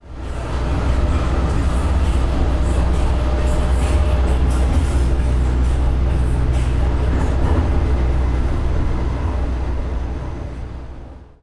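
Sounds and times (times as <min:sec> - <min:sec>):
trolley rumble: 0:00.0 - 0:11.4.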